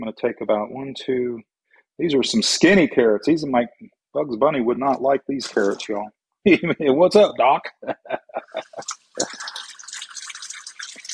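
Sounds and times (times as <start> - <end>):
speech: 0.0 - 9.6
laughter: 7.7 - 8.9
kitchen tap water running over carrots: 8.6 - 11.1.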